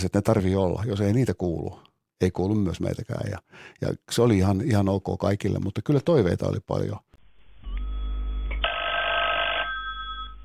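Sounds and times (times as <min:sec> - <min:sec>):
speech: 0:00.0 - 0:07.1
telephone bell ringing in a radio advertisement: 0:08.6 - 0:10.4.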